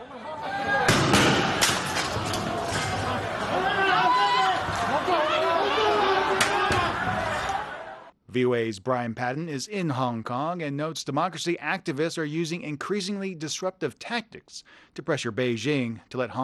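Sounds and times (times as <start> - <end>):
noisy street crowd during protest street battles: 0.0 - 8.1
tear gas launcher shots fired by police: 0.9 - 2.0
overlapping shouting and agitated voices: 2.1 - 8.1
speech: 8.4 - 16.4.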